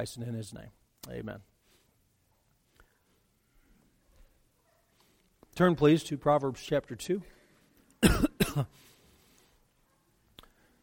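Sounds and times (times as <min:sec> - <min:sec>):
speech: 0:00.0 - 0:01.5, 0:05.6 - 0:07.4, 0:08.0 - 0:08.9
harsh coughs: 0:08.0 - 0:08.8.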